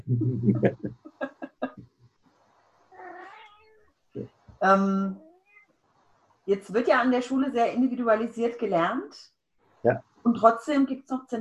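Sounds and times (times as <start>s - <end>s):
laughter: 0.0s - 1.8s
speech: 0.1s - 1.0s, 4.6s - 5.2s, 6.5s - 11.3s
pet cat meowing at home: 2.9s - 3.8s, 5.2s - 5.7s.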